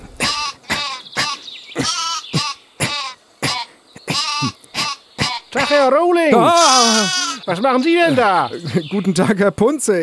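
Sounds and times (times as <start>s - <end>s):
sheep bleating: 0.3s - 5.8s, 6.4s - 8.0s
speech: 5.6s - 10.0s.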